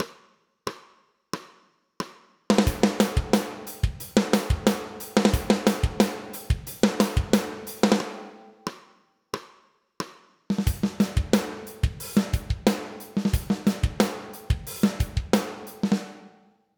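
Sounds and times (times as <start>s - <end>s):
drums with dynamics: 0.0s - 16.4s.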